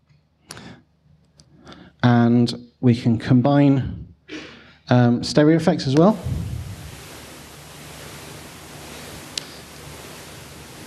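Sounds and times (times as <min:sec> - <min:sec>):
speech: 0:02.3 - 0:04.0, 0:04.9 - 0:06.4
broadband hissy pink noise sweeping left to right: 0:05.9 - 0:10.8.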